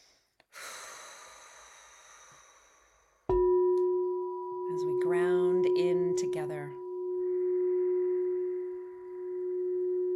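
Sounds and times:
long slow breath drawn deep into the belly: 0.0s - 3.3s
loud steady ringing tone: 3.3s - 10.1s.

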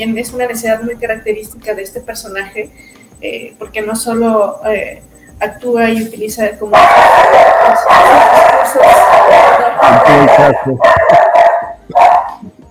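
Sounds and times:
speech: 0.0s - 9.0s, 9.8s - 11.2s
several dogs howling in a loud chorus: 6.7s - 12.4s.

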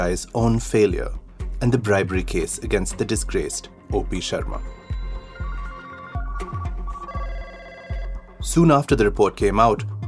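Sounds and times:
speech: 0.0s - 4.8s, 8.4s - 10.0s
steady low thumping rhythm: 0.0s - 10.0s
telephone ringing: 4.5s - 8.5s.

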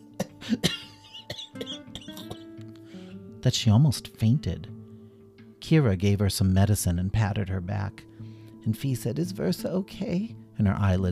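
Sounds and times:
person acting out a long coughing fit in a read-aloud story: 0.2s - 2.5s
speech: 0.5s - 0.8s, 3.4s - 4.7s, 5.7s - 11.1s.

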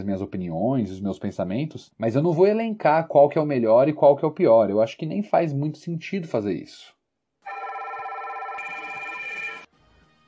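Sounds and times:
speech: 0.0s - 7.6s
telephone ringing electronically: 7.4s - 9.7s.

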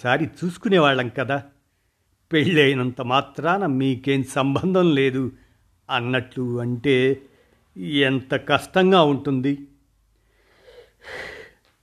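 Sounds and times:
speech: 0.0s - 1.5s, 2.3s - 9.7s, 11.0s - 11.4s
woman taking a deep breath: 10.2s - 11.7s.

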